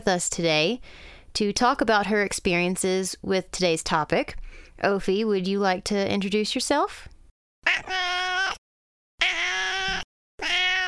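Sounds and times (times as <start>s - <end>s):
speech: 0.0s - 8.3s
cat meowing: 7.6s - 8.6s, 9.2s - 10.8s.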